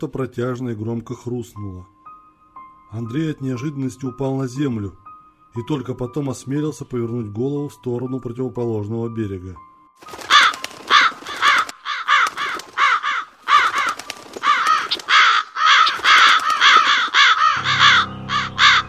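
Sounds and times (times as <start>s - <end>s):
speech: 0.0s - 2.0s, 2.9s - 10.2s
flock of crows cawing as they fly out of a forest: 10.0s - 18.8s.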